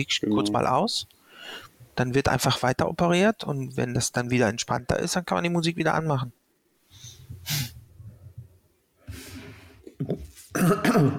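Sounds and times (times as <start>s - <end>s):
speech: 0.0s - 6.4s, 7.0s - 7.8s, 10.0s - 11.1s
person clearing throat: 10.0s - 11.1s.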